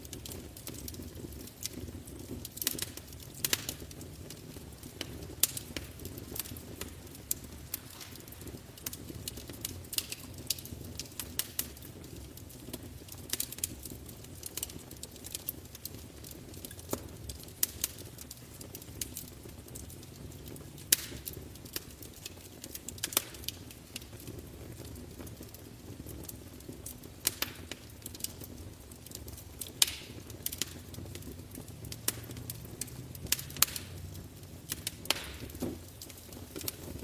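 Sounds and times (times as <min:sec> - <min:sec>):
fire roaring in a fireplace: 0:00.0 - 0:37.0.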